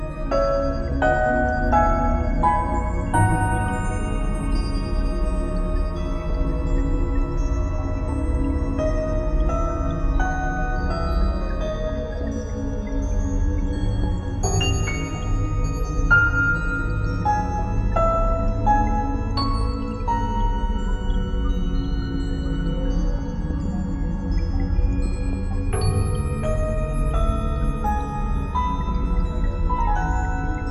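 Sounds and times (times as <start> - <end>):
quiet piano: 0.1 - 23.5, 24.3 - 30.6.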